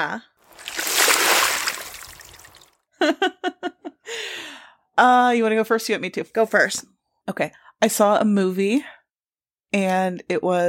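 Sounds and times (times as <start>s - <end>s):
speech: 0.0s - 0.3s, 3.0s - 3.5s, 5.0s - 9.0s, 9.7s - 10.6s
water splash: 0.4s - 2.7s.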